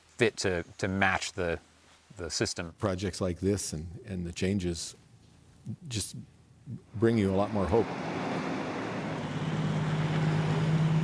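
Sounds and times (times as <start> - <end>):
speech: 0.2 - 5.0, 5.6 - 8.2
heavy logging truck engine rumbling: 6.8 - 11.0.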